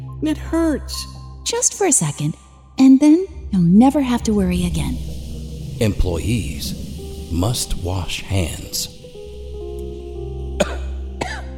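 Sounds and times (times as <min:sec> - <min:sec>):
speech: 0:00.2 - 0:05.1, 0:05.8 - 0:09.0
steady low hum: 0:03.5 - 0:11.5
person coughing: 0:10.6 - 0:11.5.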